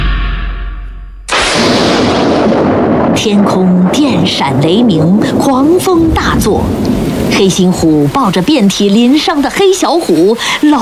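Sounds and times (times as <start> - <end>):
explosion of a large amount of buried dynamite: 0.0 - 8.0
low rumble: 0.0 - 8.6
speech: 3.2 - 10.8.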